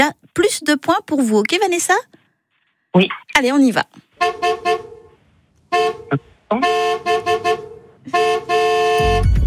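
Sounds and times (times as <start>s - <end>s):
speech: 0.0s - 2.2s, 2.9s - 4.8s, 5.8s - 7.2s
car horn honking in short and long blasts: 4.1s - 9.3s.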